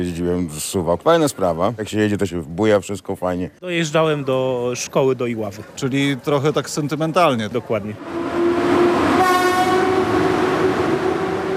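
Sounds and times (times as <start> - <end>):
speech: 0.0 - 8.4
passenger train rumbling: 4.7 - 11.5
passenger train horn blaring: 8.0 - 11.5.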